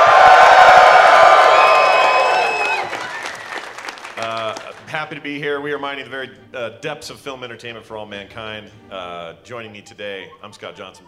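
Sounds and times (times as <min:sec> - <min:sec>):
live audience cheering, whooping and yelling: 0:00.0 - 0:04.8
live audience applause: 0:00.0 - 0:05.0
speech: 0:05.1 - 0:11.0.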